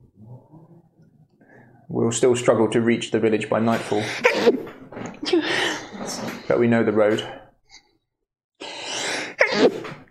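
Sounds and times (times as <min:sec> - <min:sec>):
speech: 0:02.0 - 0:04.6, 0:06.1 - 0:07.4
loud sneeze with explosive bursts of air: 0:09.4 - 0:10.0.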